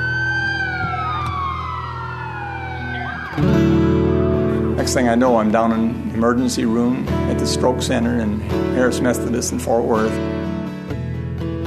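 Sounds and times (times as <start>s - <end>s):
ambulance siren wailing: 0.0s - 4.7s
speech: 3.4s - 3.8s, 4.8s - 10.5s.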